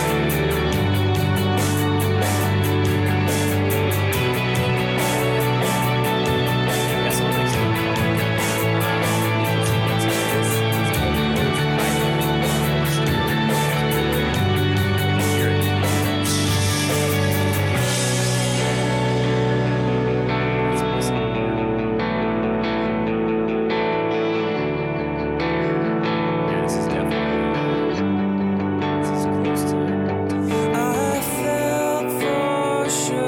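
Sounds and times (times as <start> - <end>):
steady drums in a rough band demo recording: 0.0 - 20.0
dense distorted guitars in a rough band demo recording: 0.0 - 33.2.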